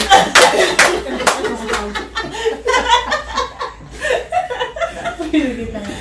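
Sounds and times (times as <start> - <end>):
sharp hand claps: 0.0 - 2.0
people chuckling: 0.0 - 5.9.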